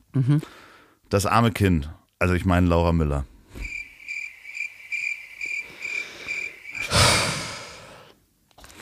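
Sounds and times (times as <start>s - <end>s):
speech: 0.2s - 3.7s
crickets chirping: 3.5s - 8.1s
loud breathy rush of air or sigh: 3.5s - 8.2s.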